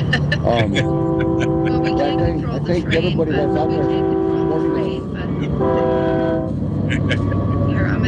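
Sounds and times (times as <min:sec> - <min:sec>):
laughter: 0:00.0 - 0:03.3, 0:05.2 - 0:06.2, 0:06.8 - 0:08.0
steady rumble of a passing train: 0:00.0 - 0:08.0
speech: 0:00.1 - 0:06.1, 0:06.9 - 0:08.0
train horn blasts: 0:00.6 - 0:06.6.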